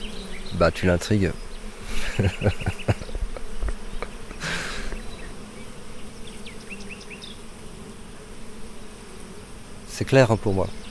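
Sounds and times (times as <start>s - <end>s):
faint bird chirps: 0.0s - 7.4s
honeybee buzzing around a person: 0.0s - 10.8s
speech: 0.6s - 2.9s, 10.0s - 10.8s
laughter: 1.9s - 5.0s.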